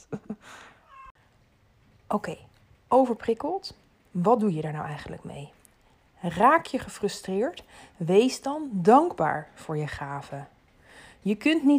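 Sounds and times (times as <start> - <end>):
laughter: 0.0 - 0.6
cat meowing: 0.8 - 1.2
speech: 2.1 - 5.6, 6.2 - 10.5, 11.2 - 11.7.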